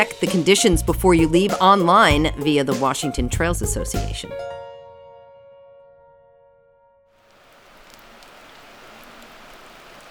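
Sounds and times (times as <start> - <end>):
speech: 0.0 - 4.6
rain falling outdoors: 7.2 - 10.1.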